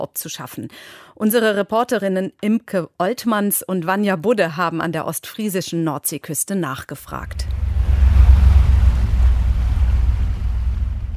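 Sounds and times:
speech: 0.0 - 7.6
boat rumble at sea on the North Sea: 7.1 - 11.1
wind at sea: 7.1 - 11.1.

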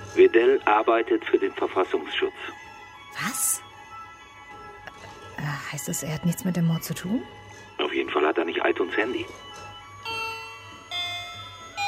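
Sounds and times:
speech: 0.2 - 3.6, 5.4 - 9.6
doorbell chime ringing in a home: 9.2 - 11.8.

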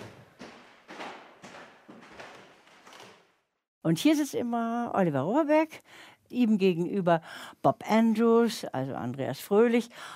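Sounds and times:
footsteps walking up creaky wooden stairs: 0.0 - 3.5
speech: 3.8 - 10.1.

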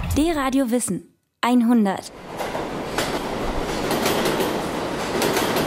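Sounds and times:
speech: 0.2 - 2.3
New York subway train rumbling: 2.1 - 5.6
subway train wheels clacking over rail joints: 2.2 - 5.6.

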